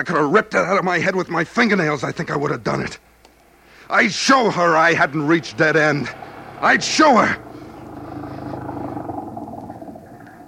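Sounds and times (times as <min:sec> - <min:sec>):
speech: 0:00.0 - 0:03.1, 0:03.9 - 0:07.5
old flivver car engine rumbling: 0:03.4 - 0:10.4.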